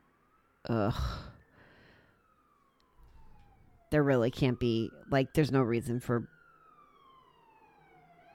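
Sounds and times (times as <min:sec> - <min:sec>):
emergency vehicle siren passing: 0:00.0 - 0:08.3
speech: 0:00.6 - 0:01.3, 0:03.9 - 0:06.4
breathy sound: 0:00.7 - 0:02.3.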